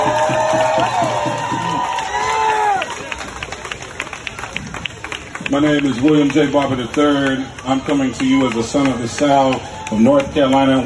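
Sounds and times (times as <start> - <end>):
crowd at a movement rally cheering and shouting: 0.0 - 3.3, 7.0 - 10.8
people clapping: 0.0 - 10.8
speech: 5.5 - 10.8.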